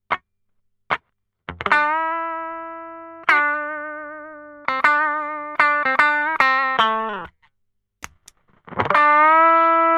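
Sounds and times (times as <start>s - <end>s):
guitar through compressor and rectifier effects: 1.5s - 7.3s, 8.6s - 9.9s.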